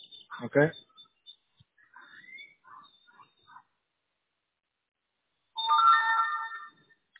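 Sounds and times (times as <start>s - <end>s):
speech: 0.4s - 0.8s
phone notification beeps for incoming text messages: 5.6s - 6.9s
louder fuller electronic phone tone: 5.6s - 7.0s.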